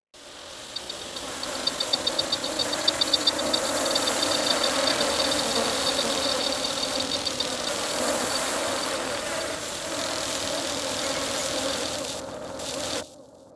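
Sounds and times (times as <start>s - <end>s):
insect: 0.2s - 13.5s.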